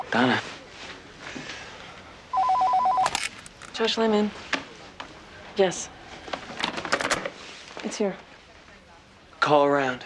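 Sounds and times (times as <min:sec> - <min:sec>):
speech: 0:00.1 - 0:00.5, 0:03.8 - 0:04.5, 0:05.6 - 0:06.0, 0:07.9 - 0:08.3, 0:09.4 - 0:10.0
phone ringing with electronic trill: 0:02.3 - 0:03.2.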